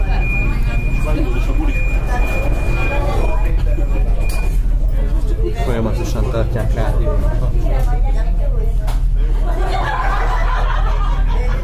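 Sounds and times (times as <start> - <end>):
high metro door closing warning tone: 0.0 - 5.0
crowded metro carriage rumbling: 0.0 - 11.6
people talking in a metro carriage: 0.0 - 11.6
laughter: 9.2 - 11.6.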